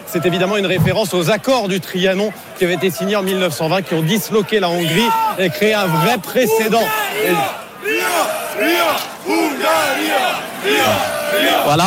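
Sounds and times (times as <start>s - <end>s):
speech: 0.1s - 7.6s, 8.2s - 11.8s
football supporters chanting in unison in a stadium: 6.6s - 11.8s
dense roar of many voices in a stadium: 6.9s - 11.8s.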